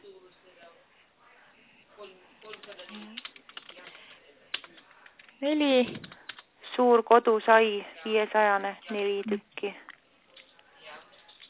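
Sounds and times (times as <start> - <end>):
typing an order invoice on a computer keyboard: 2.4 - 6.5
speech: 5.4 - 6.1, 6.8 - 9.8.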